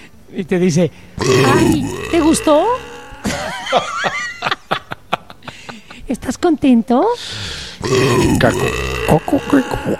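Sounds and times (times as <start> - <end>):
speech: 0.3 - 2.8, 3.7 - 4.2, 6.1 - 9.9
loud drawn-out burp breaking into guttural croaks: 1.2 - 3.8, 7.8 - 9.9
laughter: 3.2 - 6.0.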